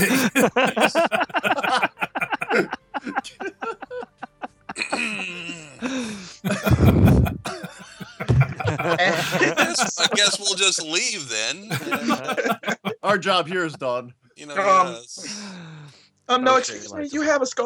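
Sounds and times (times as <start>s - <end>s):
speech: 0.0s - 1.1s, 13.2s - 15.0s, 16.6s - 17.6s
raspy grunts and vocal rumbles: 0.0s - 2.6s, 6.5s - 10.1s
person clearing throat: 0.0s - 2.7s, 6.5s - 10.2s, 11.7s - 13.1s
laughter: 0.0s - 5.5s, 6.4s - 10.7s, 11.6s - 13.8s.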